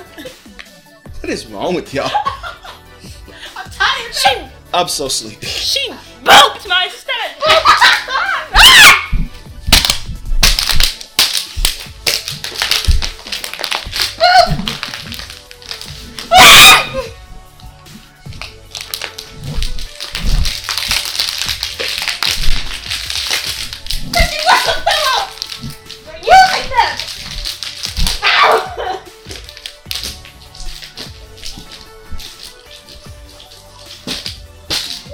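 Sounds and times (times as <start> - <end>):
speech: 1.3 - 2.3, 4.7 - 8.0
people laughing: 2.0 - 2.9, 7.4 - 8.5
people shrieking: 7.4 - 9.1, 16.3 - 17.1, 28.1 - 29.1
plastic water bottle smacking people: 8.6 - 17.6, 18.3 - 35.1.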